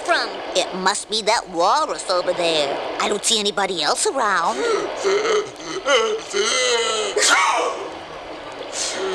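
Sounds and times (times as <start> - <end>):
speech: 0.2 - 7.8
loud throaty sneeze: 6.6 - 7.9.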